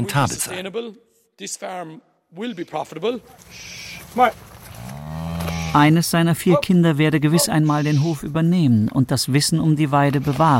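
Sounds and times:
speech: 0:00.0 - 0:04.5, 0:05.7 - 0:10.5
shuffle of a dairy cow herd on the move: 0:03.2 - 0:07.5
dairy cows mooing leaving the milking parlour: 0:03.5 - 0:06.6.

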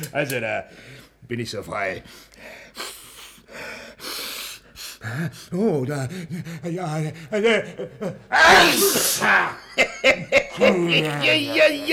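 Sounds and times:
speech: 0:00.0 - 0:02.9, 0:05.0 - 0:11.9
laughter: 0:05.1 - 0:11.9
person sneezing after taking snuff: 0:08.4 - 0:09.6.

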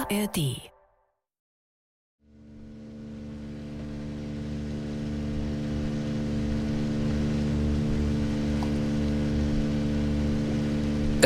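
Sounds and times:
speech: 0:00.1 - 0:00.7
small motorboat engine chugging on the water: 0:02.3 - 0:11.2.

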